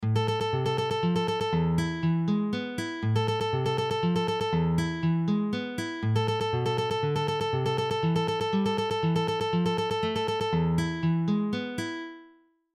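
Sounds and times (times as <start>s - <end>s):
simple tremolo exercise: 0.0s - 11.7s.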